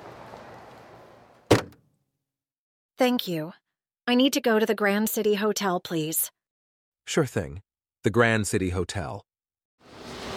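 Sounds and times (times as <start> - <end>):
car trunk being opened for luggage: 1.5 - 1.8
speech: 3.0 - 6.4, 7.0 - 9.3.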